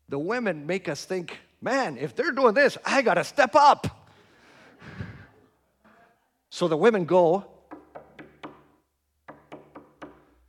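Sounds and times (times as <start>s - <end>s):
speech: 0.1s - 4.0s, 6.6s - 7.5s
sharp knocks on a door: 7.7s - 10.3s.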